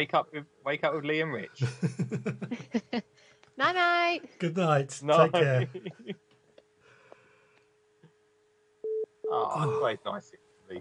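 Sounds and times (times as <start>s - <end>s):
speech: 0.0s - 6.2s, 9.3s - 10.8s
laughter: 1.6s - 3.0s, 5.2s - 6.2s
breaths: 3.1s - 3.6s, 6.8s - 7.8s
telephone busy tone after a call ends: 8.8s - 9.5s.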